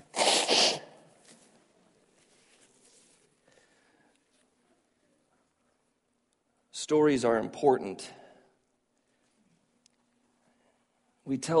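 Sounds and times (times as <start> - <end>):
nose blowing: 0.0 - 1.0
speech: 6.9 - 8.2, 11.3 - 11.5.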